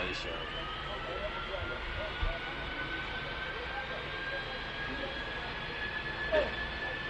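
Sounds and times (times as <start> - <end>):
Boeing 767 jet engines roaring during takeoff: 0.0 - 7.0.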